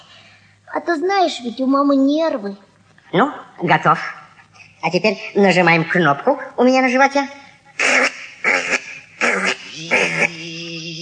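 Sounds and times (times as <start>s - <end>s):
speech: 0.7s - 4.2s, 4.8s - 7.4s
person imitating a motor humming: 7.8s - 10.9s.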